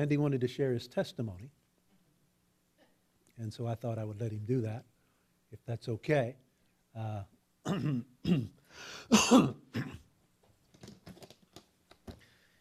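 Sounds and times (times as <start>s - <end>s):
speech: 0.0s - 1.6s, 3.4s - 4.9s, 5.5s - 10.0s
person clearing their throat and coughing: 7.7s - 10.1s.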